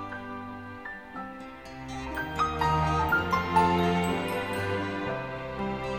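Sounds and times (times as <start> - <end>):
lunch break bell from primary school broadcast bell system: 2.2 - 5.8.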